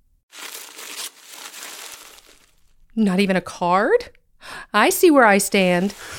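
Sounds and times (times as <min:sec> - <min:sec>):
wrapping paper crinkling as a birthday present is unwrapped: 0:00.3 - 0:02.8, 0:05.6 - 0:06.1
speech: 0:03.0 - 0:06.1.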